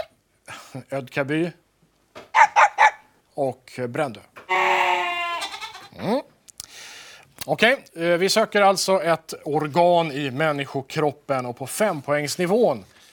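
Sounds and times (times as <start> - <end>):
speech: 0.8 - 1.6, 3.4 - 4.6, 7.5 - 13.0
quiz team answer-button buzzer sound effect of a turkey gobbling: 4.5 - 5.6.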